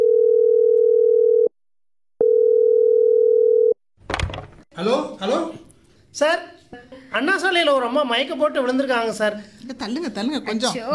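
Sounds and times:
telephone dial tone: 0:00.0 - 0:01.5, 0:02.2 - 0:03.8
speech: 0:04.8 - 0:05.6, 0:06.2 - 0:10.9.

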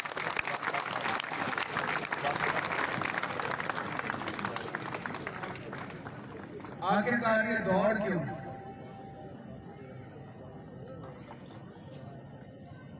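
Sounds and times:
sustained applause from a sizable crowd for athletes: 0:00.0 - 0:07.4
faint murmur of voices: 0:00.0 - 0:12.9
speech: 0:06.8 - 0:08.4.

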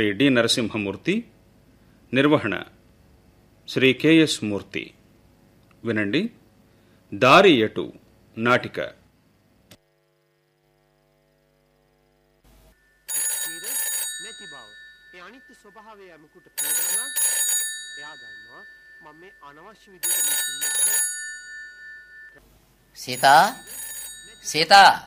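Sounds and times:
speech: 0:00.0 - 0:01.4, 0:02.1 - 0:02.8, 0:03.7 - 0:05.0, 0:05.8 - 0:06.4, 0:07.1 - 0:09.0, 0:19.0 - 0:21.2, 0:23.0 - 0:23.8, 0:24.4 - 0:25.0
telephone ringing with bright bell tone: 0:12.7 - 0:25.0.

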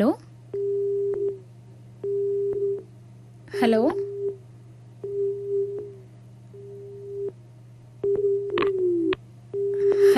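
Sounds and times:
speech: 0:00.0 - 0:00.3, 0:03.5 - 0:04.1
low constant hum: 0:00.0 - 0:10.1
telephone busy tone after a phone line cuts off: 0:00.5 - 0:01.4, 0:02.0 - 0:02.9, 0:05.0 - 0:06.0, 0:06.6 - 0:07.4, 0:08.0 - 0:10.1.

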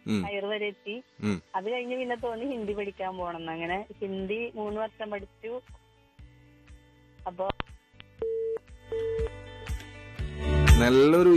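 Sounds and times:
speech: 0:00.1 - 0:05.8, 0:07.2 - 0:07.8, 0:10.4 - 0:11.3
phone line tone after a dropped call: 0:08.2 - 0:09.3.

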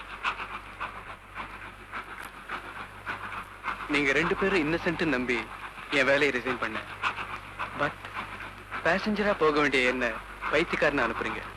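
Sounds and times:
train rolling along the rails with a low rumble: 0:00.0 - 0:11.5
speech: 0:03.9 - 0:07.0, 0:07.8 - 0:08.0, 0:08.8 - 0:11.5.

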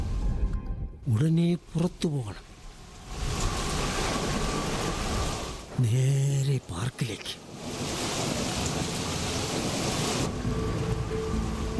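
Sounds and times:
speech: 0:01.0 - 0:02.5, 0:05.8 - 0:07.9
heavy rain pouring on bushes in a park: 0:01.6 - 0:11.7.

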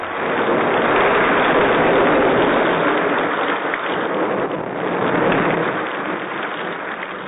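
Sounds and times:
heavy rain: 0:00.0 - 0:07.2.

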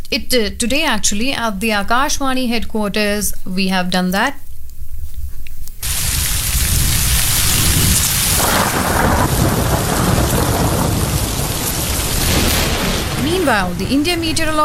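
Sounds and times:
speech: 0:00.1 - 0:04.4, 0:13.5 - 0:14.6
deep thunder rumbling: 0:05.8 - 0:14.6
roaring downpour of heavy rain in Delhi: 0:05.8 - 0:14.6.

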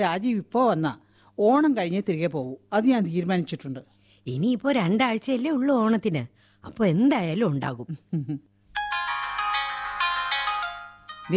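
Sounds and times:
speech: 0:00.0 - 0:08.5
telephone ringtone electronic melody: 0:08.8 - 0:11.3.

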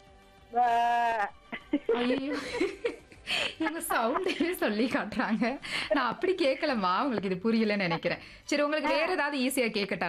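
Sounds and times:
person imitating a goat bleating: 0:00.5 - 0:01.4
speech: 0:00.5 - 0:01.4, 0:02.0 - 0:10.0
laughter: 0:01.5 - 0:06.8.

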